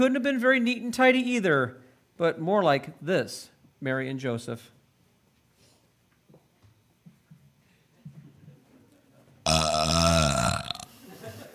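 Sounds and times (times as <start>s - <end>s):
speech: 0.0s - 4.8s
baby burping: 9.5s - 10.9s.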